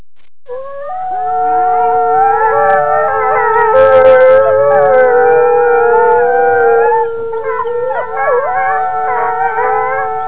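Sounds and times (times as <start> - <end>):
wolf howling: 0.5 - 10.2
wolf growling: 2.4 - 10.1.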